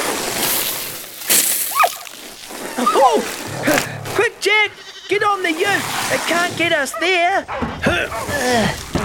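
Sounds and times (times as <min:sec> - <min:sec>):
water splashing from a loose spinning hose: 0:00.0 - 0:03.5, 0:05.5 - 0:06.7
speech: 0:02.8 - 0:08.9.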